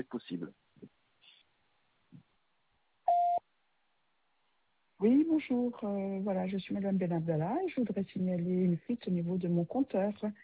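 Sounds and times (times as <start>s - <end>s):
speech: 0.0s - 0.6s, 5.0s - 10.4s
steady electronic answering machine beep: 3.1s - 3.4s.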